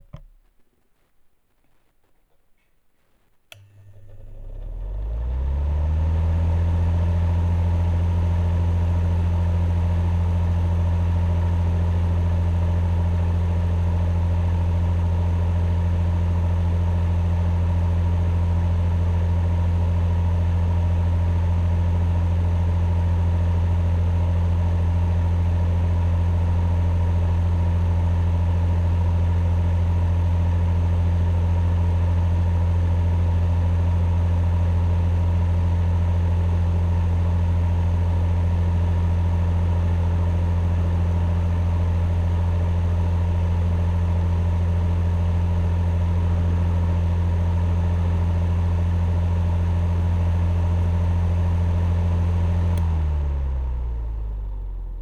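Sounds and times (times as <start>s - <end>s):
electric heater: 3.5s - 55.0s.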